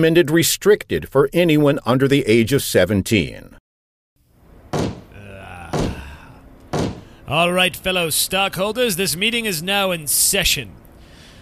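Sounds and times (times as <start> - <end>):
speech: 0.0 - 3.6, 7.3 - 10.8
faint steady hum: 4.2 - 11.4
heavy dull thuds on a wooden table: 4.7 - 7.2.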